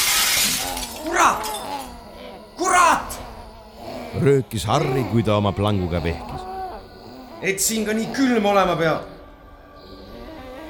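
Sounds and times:
glass windows shattering as attackers break through them at a railway station: 0.0s - 1.8s
voice-like vocal sounds: 0.0s - 10.6s
speech: 1.0s - 1.6s, 4.2s - 6.5s, 7.4s - 9.1s.

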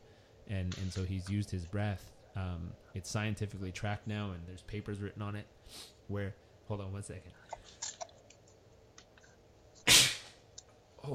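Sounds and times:
speech: 0.5s - 7.9s
sudden loud sneeze: 9.8s - 10.4s.

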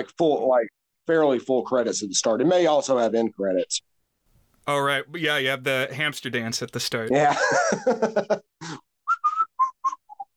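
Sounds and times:
speech: 0.0s - 3.9s, 4.6s - 8.9s
laughter: 7.1s - 8.5s
person whistling a short bright melody: 9.0s - 10.3s.

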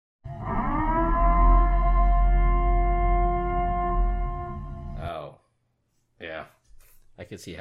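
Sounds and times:
emergency siren tone used as phone ringtone: 0.3s - 5.0s
speech: 7.2s - 7.6s.

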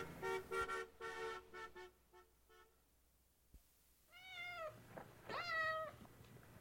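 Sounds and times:
horn-like honking tones: 0.0s - 2.8s
cat meowing: 4.1s - 6.1s.

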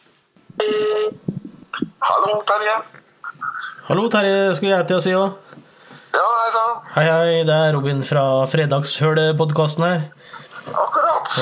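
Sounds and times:
telephone ringing on the line while a call is placed: 0.6s - 1.2s
speech: 0.6s - 1.3s, 2.1s - 3.0s, 3.9s - 5.5s, 6.2s - 11.4s.

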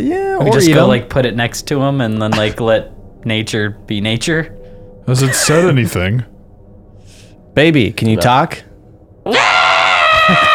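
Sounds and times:
speech: 0.0s - 6.3s, 7.6s - 9.6s, 10.3s - 10.5s
voice imitating a creature's shrill harmonic scream: 5.2s - 5.8s, 9.3s - 10.5s.

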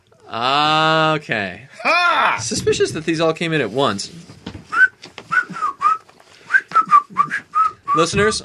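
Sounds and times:
speech: 0.3s - 4.3s, 8.0s - 8.4s
person whistling a casual carefree tune: 4.7s - 8.1s.

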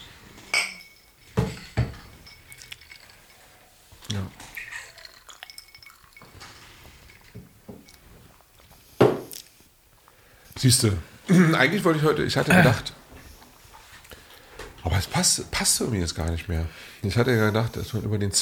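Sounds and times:
glasses clinking in a toast: 0.0s - 8.4s
speech: 10.6s - 13.0s, 15.2s - 18.3s.

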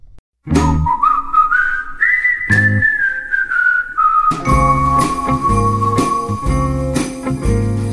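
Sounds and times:
bright whistled melody: 0.5s - 7.9s
lively Christmas song with steady beats: 4.3s - 7.9s
tinkling bell-like accents: 4.4s - 7.9s.

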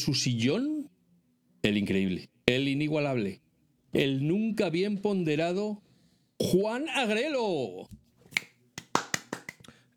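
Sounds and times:
speech: 0.0s - 0.8s, 1.6s - 5.8s, 6.4s - 8.0s
single person clapping hands: 8.3s - 9.8s.

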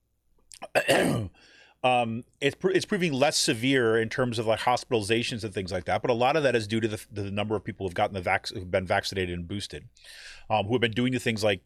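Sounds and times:
throat clearing to dislodge something stuck in the throat: 0.6s - 1.4s
speech: 0.9s - 11.6s.

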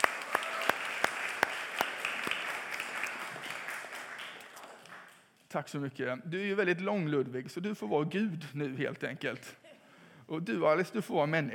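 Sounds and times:
small crowd applauding: 0.0s - 5.5s
speech: 5.5s - 9.6s, 10.3s - 11.5s.

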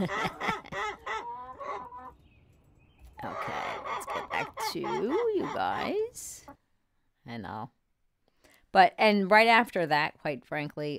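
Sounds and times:
speech: 0.0s - 0.4s, 4.7s - 6.4s, 7.3s - 7.8s, 8.7s - 10.9s
Barred Rock hen clucking: 0.0s - 2.2s, 3.2s - 6.6s.

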